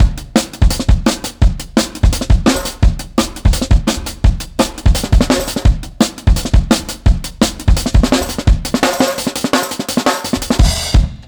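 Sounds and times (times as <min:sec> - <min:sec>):
drum and bass beat: 0:00.0 - 0:11.2.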